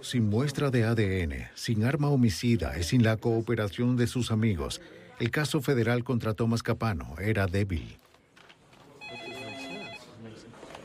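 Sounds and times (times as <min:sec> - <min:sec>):
speech: 0:00.0 - 0:08.0
telephone ringing with electronic tones: 0:09.0 - 0:10.2.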